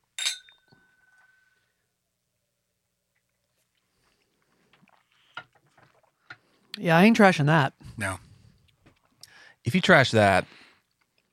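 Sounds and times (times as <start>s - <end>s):
two whiskey glasses clinking in a toast: 0.1s - 1.5s
speech: 6.8s - 8.3s, 9.6s - 10.6s.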